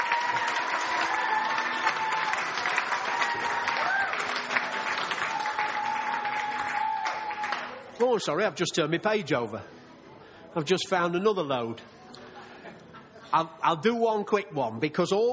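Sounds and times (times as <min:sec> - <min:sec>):
sizeable crowd applauding: 0:00.0 - 0:08.0
speech: 0:08.0 - 0:09.8, 0:10.6 - 0:12.0, 0:13.3 - 0:15.3.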